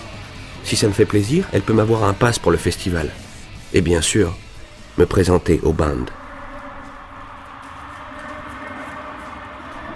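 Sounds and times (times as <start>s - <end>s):
speech: 0.6s - 4.4s, 5.0s - 6.2s
metro train running with roar of wheels and motor noise: 6.0s - 9.9s.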